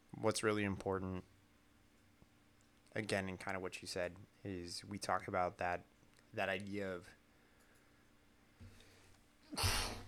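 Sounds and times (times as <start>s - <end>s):
faint low hum: 0.0s - 10.0s
speech: 0.2s - 1.4s, 2.9s - 7.2s, 9.5s - 9.8s
person sneezing: 9.5s - 10.0s.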